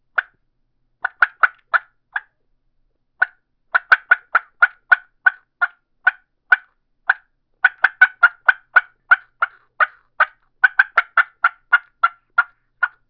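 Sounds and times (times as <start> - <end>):
turkey mouth call cutts: 0.2 - 0.4, 1.0 - 2.4, 3.2 - 13.0.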